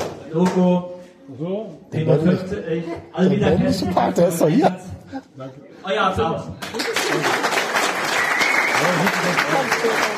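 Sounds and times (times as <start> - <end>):
speech: 0.3 - 7.6, 8.8 - 10.1
audience applause: 6.7 - 10.1.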